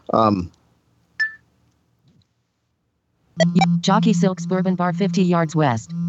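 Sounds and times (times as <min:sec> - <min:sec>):
speech: 0:00.1 - 0:00.6, 0:03.4 - 0:06.0
short clear electronic beep from a smartphone app: 0:03.4 - 0:04.3
brief burst of voice-like sound: 0:03.4 - 0:05.9
faint low hum of a vibrating phone: 0:03.4 - 0:06.0.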